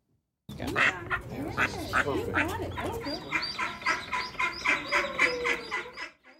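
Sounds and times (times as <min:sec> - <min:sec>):
ducks quacking: 0:00.5 - 0:06.3
faint murmur: 0:00.5 - 0:06.3
higher chirping: 0:02.6 - 0:06.3.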